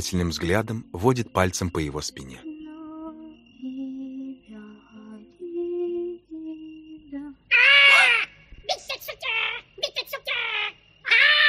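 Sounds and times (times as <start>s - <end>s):
speech: 0.0s - 2.5s
parrot screeching: 7.5s - 8.4s, 9.2s - 11.4s.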